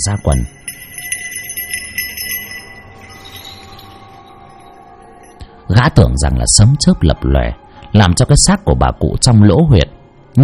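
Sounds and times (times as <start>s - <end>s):
speech: 0.0s - 0.6s, 5.7s - 10.4s
bells jingling: 0.0s - 5.8s.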